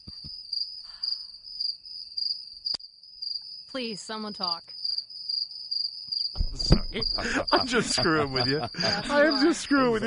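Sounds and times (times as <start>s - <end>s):
crickets chirping: 0.0s - 10.0s
speech: 3.7s - 4.8s, 6.9s - 10.0s
brief thumps and clicks: 6.4s - 7.2s
laughter: 6.5s - 10.0s.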